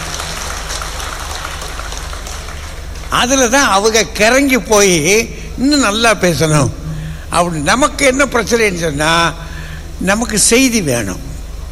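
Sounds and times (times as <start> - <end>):
audience clapping: 0.0 - 3.6
speech: 3.1 - 9.4, 10.0 - 11.3.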